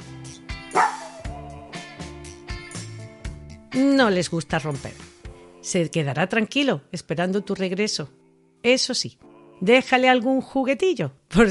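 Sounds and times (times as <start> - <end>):
rhythmic musical backing with regular beats: 0.0 - 3.6
dog barking: 0.7 - 1.3
speech: 3.8 - 5.1, 5.7 - 11.4.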